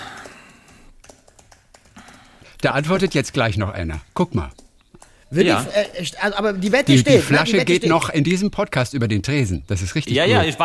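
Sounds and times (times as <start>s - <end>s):
typing a WhatsApp message on a phone: 0.0s - 5.3s
speech: 2.6s - 4.6s, 5.3s - 10.6s.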